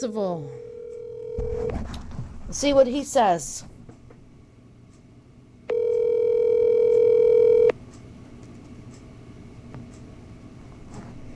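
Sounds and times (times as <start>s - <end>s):
speech: 0.0s - 0.7s, 1.4s - 3.7s
ringback tone on an outgoing phone call: 0.5s - 1.7s, 5.7s - 7.7s.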